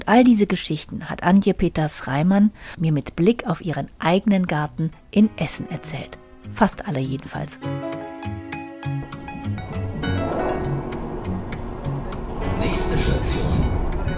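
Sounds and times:
speech: 0.1s - 8.4s
S-Bahn commuter train rumbling into station at Kettwig in Essen: 9.1s - 14.1s
S-Bahn train wheels clacking over the rails: 10.0s - 14.1s.

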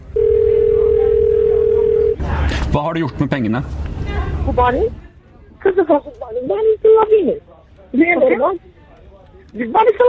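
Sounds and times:
low rumble: 0.0s - 10.0s
telephone dial tone: 0.2s - 2.2s
speech: 2.7s - 8.7s, 9.5s - 10.0s.

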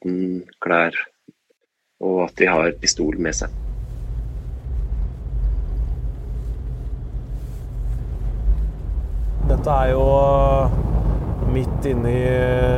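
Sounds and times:
speech: 0.0s - 1.2s, 2.2s - 3.6s, 9.6s - 10.8s, 11.6s - 12.7s
car engine and tyre drone heard from inside the cabin: 3.0s - 12.7s.

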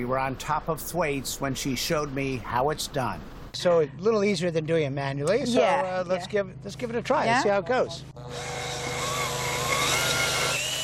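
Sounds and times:
speech: 0.0s - 8.7s
cordless drill turning an ice coring device in firn: 8.2s - 10.8s.

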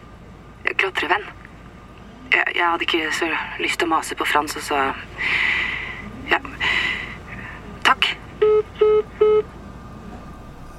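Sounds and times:
speech: 0.8s - 1.4s, 2.3s - 5.7s
electronic beeps of a phone calling tone: 8.4s - 9.5s.

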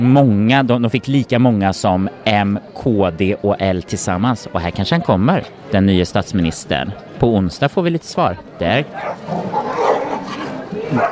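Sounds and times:
speech: 0.0s - 9.8s, 10.9s - 11.1s
murmur of human voices: 0.0s - 11.1s
dog barking in short sharp bursts: 9.0s - 10.2s, 10.9s - 11.1s.

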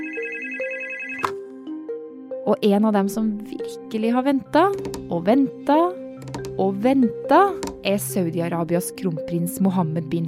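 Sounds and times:
telephone electronic ringtone: 0.0s - 1.3s
speech: 2.5s - 10.2s.

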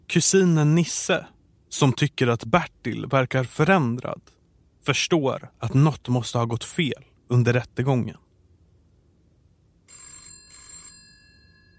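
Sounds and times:
speech: 0.1s - 8.2s
telephone bell ringing: 9.9s - 11.7s.

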